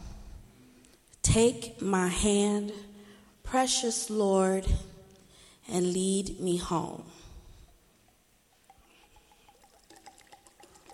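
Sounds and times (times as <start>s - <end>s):
speech: 1.3s - 2.9s, 3.5s - 4.9s, 5.7s - 7.2s
liquid poured as a libation in a steady trickle: 8.0s - 10.9s
small splashes and drips of poured liquid: 8.6s - 10.9s.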